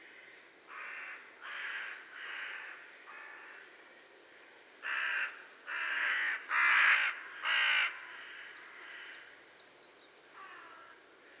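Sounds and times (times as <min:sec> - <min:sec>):
carrion crow Corvus corone harsh broadband caw: 0:00.1 - 0:03.5, 0:04.8 - 0:09.2.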